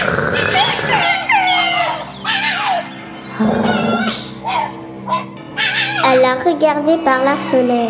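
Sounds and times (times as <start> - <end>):
fox yelping: 0.0 - 6.2
speech: 3.4 - 3.8, 6.2 - 7.8.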